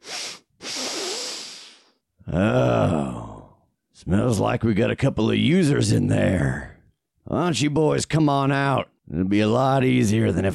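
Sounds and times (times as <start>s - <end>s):
voice imitating loud sniffing: 0.0s - 2.0s
speech: 2.3s - 3.2s, 4.0s - 10.5s.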